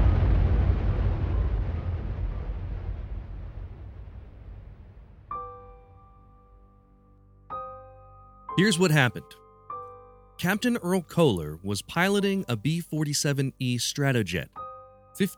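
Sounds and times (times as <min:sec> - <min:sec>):
huge explosion with deep roaring rumble: 0:00.0 - 0:05.3
speech: 0:08.6 - 0:09.4, 0:10.4 - 0:14.6, 0:15.2 - 0:15.3.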